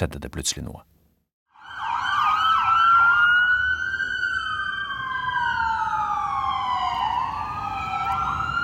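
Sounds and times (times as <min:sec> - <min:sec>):
speech: 0:00.0 - 0:00.9
police car sirens wailing on a street in Lower Manhattan, New York: 0:01.6 - 0:08.6.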